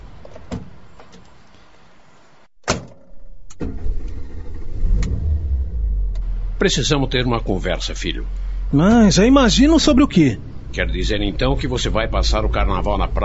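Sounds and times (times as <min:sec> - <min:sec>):
car engine idling and droning: 0:04.7 - 0:13.2
speech: 0:06.6 - 0:13.2.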